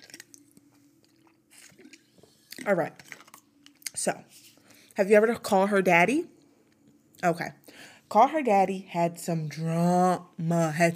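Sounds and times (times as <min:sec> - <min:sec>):
person sipping water: 0:00.0 - 0:03.9
speech: 0:02.6 - 0:03.1, 0:04.0 - 0:04.4, 0:05.0 - 0:06.4, 0:07.2 - 0:10.9.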